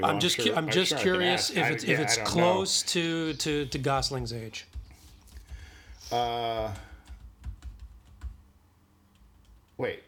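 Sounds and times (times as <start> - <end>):
speech: 0.0 - 4.8, 6.0 - 6.9, 9.8 - 10.0
typing on a computer keyboard: 6.6 - 8.4, 9.1 - 9.8.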